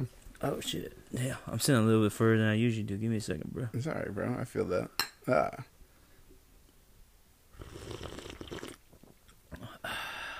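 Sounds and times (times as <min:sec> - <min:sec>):
speech: 0:00.0 - 0:05.7
person slurping a drink: 0:07.6 - 0:08.9.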